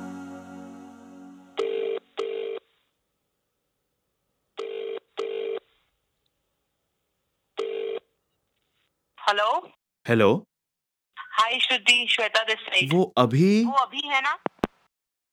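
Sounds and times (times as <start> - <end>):
phone ringback tone: 1.6 - 2.7, 7.6 - 8.0
speech: 9.3 - 10.5, 11.4 - 14.5.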